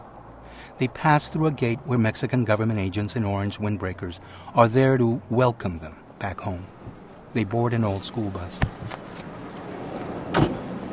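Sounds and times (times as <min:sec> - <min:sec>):
low steady noise: 0:00.0 - 0:10.9
speech: 0:00.7 - 0:09.0
taxi cab door thumping shut: 0:10.3 - 0:10.6.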